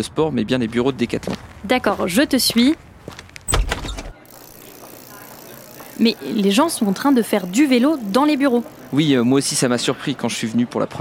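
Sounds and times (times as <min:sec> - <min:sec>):
speech: 0:00.0 - 0:03.2, 0:06.0 - 0:10.9
office door closing with dull solid thud: 0:03.5 - 0:04.2.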